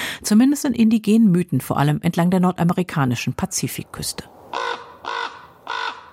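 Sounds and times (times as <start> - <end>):
speech: 0.2 - 5.2
raven croaking: 4.3 - 6.1.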